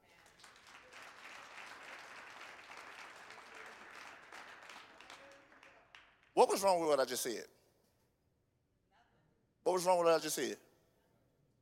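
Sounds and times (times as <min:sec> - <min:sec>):
large group clapping hands: 0:00.0 - 0:06.0
speech: 0:06.4 - 0:07.6, 0:09.7 - 0:10.7.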